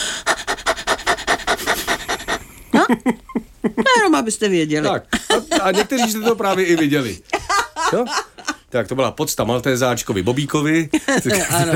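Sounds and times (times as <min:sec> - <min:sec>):
person imitating a dog's panting as a warm-up exercise: 0:00.0 - 0:02.7
speech: 0:02.9 - 0:03.2, 0:04.2 - 0:07.3, 0:07.9 - 0:11.7
laughter: 0:04.9 - 0:08.6, 0:10.9 - 0:11.7.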